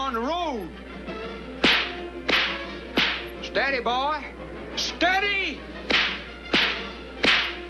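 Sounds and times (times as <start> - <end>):
speech: 0.1 - 0.9, 3.6 - 5.8
whip cracking: 1.6 - 3.4, 5.9 - 7.6
man calling out: 4.8 - 5.6.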